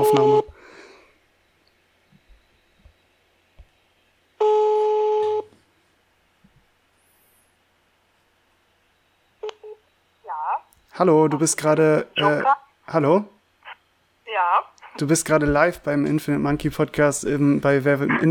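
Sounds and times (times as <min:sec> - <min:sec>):
loud steady electronic phone tone on speakerphone: 0:00.0 - 0:00.5, 0:04.4 - 0:05.5
speech: 0:00.0 - 0:00.6, 0:11.0 - 0:13.4, 0:14.4 - 0:18.2.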